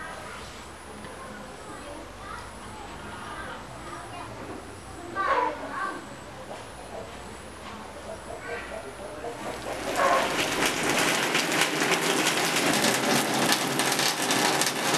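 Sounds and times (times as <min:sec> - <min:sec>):
faint voices: 0:00.0 - 0:10.4
steady rain falling: 0:09.4 - 0:14.9.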